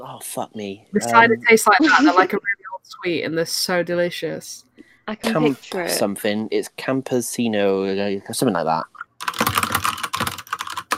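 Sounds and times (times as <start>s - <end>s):
speech: 0.2s - 9.0s
fast vigorous typing on a computer keyboard: 9.0s - 10.9s.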